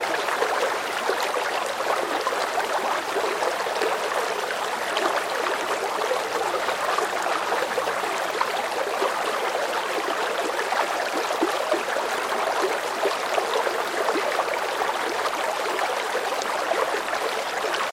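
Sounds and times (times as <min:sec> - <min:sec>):
continuous babbling of a large powerful stream: 0:00.0 - 0:17.9.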